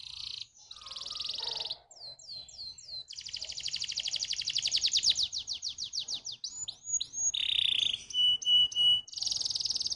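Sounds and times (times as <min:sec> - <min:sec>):
Atlantic canary song: 0:00.0 - 0:09.9.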